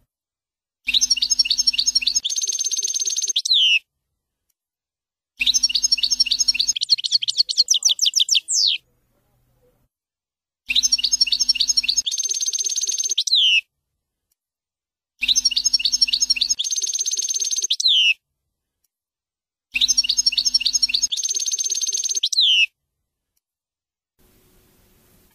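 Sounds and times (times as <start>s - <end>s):
European goldfinch song: 0.8s - 3.9s, 5.4s - 8.9s, 10.6s - 13.7s, 15.2s - 18.2s, 19.7s - 22.7s.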